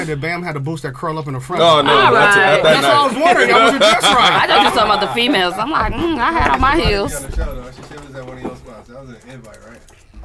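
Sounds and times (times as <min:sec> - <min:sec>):
speech: 0:00.0 - 0:10.0
laughter: 0:01.5 - 0:10.2
pigeon cooing: 0:09.0 - 0:10.2.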